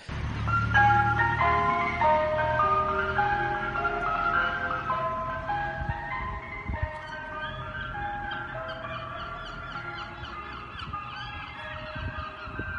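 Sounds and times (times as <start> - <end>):
ice cream van in the UK playing its chiming tune: 0.1 - 12.7.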